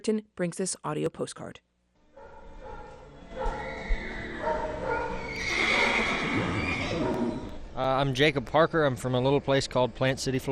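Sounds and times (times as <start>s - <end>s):
speech: 0.0s - 1.7s, 7.8s - 10.4s
busy barn noise: 2.2s - 7.7s
horse whinnying: 3.4s - 7.6s.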